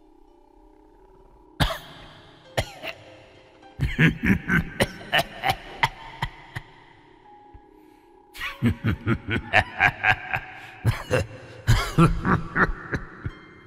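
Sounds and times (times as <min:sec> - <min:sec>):
elderly man coughing harshly inside a house: 0:01.6 - 0:01.9, 0:02.6 - 0:03.0, 0:03.8 - 0:06.8, 0:10.8 - 0:13.0
laughter: 0:08.4 - 0:11.2, 0:11.9 - 0:13.4.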